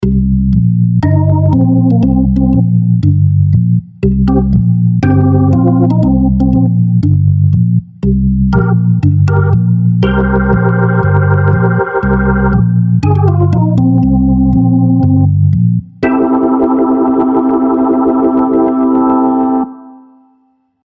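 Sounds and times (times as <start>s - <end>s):
bebop music with Leslie: 0.0s - 20.4s.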